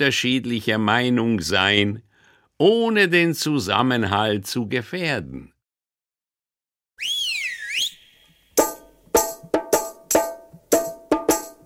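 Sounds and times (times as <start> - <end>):
speech: 0.0 - 5.5
bright whistle gliding up and down: 7.0 - 8.8
loud ringing struck notes in quick rhythm: 8.6 - 11.5.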